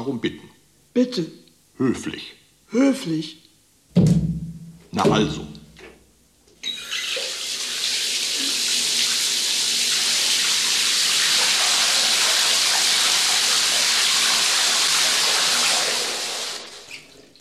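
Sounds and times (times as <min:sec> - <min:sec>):
speech: 0:00.0 - 0:03.4, 0:05.0 - 0:05.6
tap water running into a bathtub: 0:06.7 - 0:17.3.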